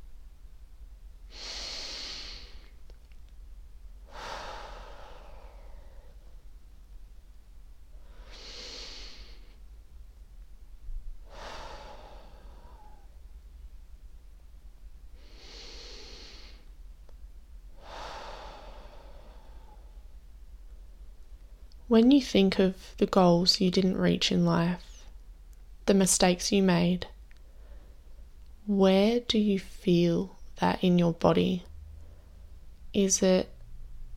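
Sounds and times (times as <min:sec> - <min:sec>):
deep breaths taken during a guided meditation: 0:01.3 - 0:02.8, 0:04.0 - 0:06.4, 0:07.9 - 0:09.6, 0:11.2 - 0:13.3, 0:15.1 - 0:16.7, 0:17.7 - 0:21.7, 0:27.4 - 0:28.2, 0:31.8 - 0:32.7
speech: 0:21.9 - 0:24.9, 0:25.9 - 0:27.1, 0:28.7 - 0:31.7, 0:32.9 - 0:33.5.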